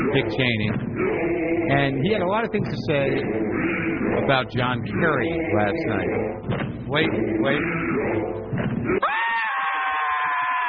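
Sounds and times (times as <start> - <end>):
speech: 0.1 - 1.1, 1.7 - 9.1
small scream sound effect: 9.0 - 10.6.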